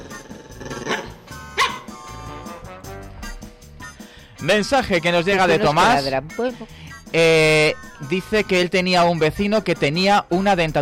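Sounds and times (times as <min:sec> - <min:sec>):
man imitating dog barks coming down a stairway: 0:00.9 - 0:01.9, 0:05.4 - 0:06.1
speech: 0:04.4 - 0:10.8.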